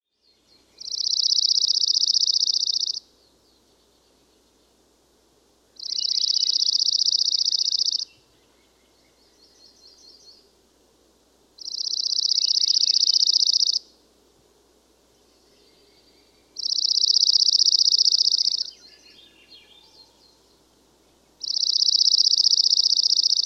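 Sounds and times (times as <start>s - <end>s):
Dark-eyed Junco Junco hyemalis calling: 0.6s - 3.1s, 5.8s - 10.5s, 11.6s - 13.9s, 15.4s - 20.6s, 21.4s - 23.4s.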